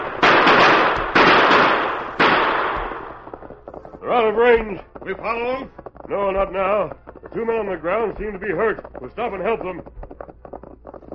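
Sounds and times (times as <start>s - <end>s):
gunshots fired at riding outlaws, radio drama effect: 0.0s - 3.5s
speech: 4.1s - 10.0s.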